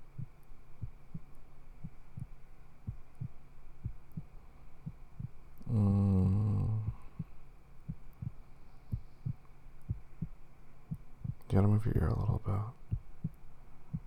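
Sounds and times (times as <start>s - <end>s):
loud low droning hum: 0.0s - 14.0s
human heartbeat heard through the chest: 0.1s - 5.4s, 6.4s - 11.5s, 12.8s - 14.0s
speech: 11.8s - 12.8s.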